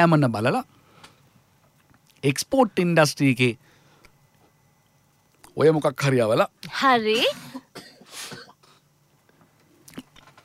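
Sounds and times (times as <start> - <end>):
speech: 0.0 - 0.8, 2.2 - 3.7, 5.6 - 8.4
person coughing into a microphone: 7.2 - 8.9.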